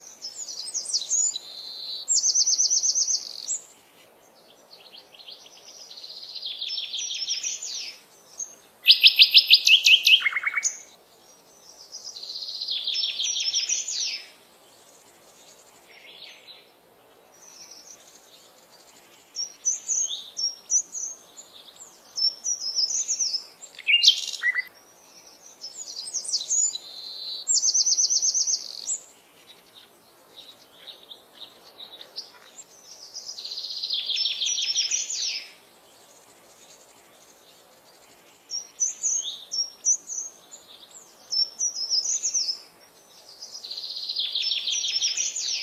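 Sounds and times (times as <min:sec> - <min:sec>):
birds in woods: 0:00.0 - 0:45.6.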